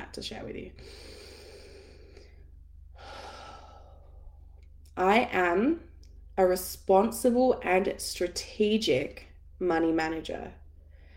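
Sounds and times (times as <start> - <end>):
speech: 0.1 - 1.2, 5.0 - 10.6
slow deep human breaths during a guided affirmation exercise: 0.8 - 4.5, 10.8 - 11.1.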